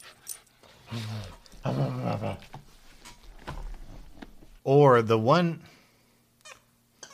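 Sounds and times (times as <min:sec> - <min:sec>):
snuffling: 0:00.0 - 0:04.6
dog growling: 0:00.8 - 0:02.6
speech: 0:00.9 - 0:02.7, 0:04.7 - 0:05.7.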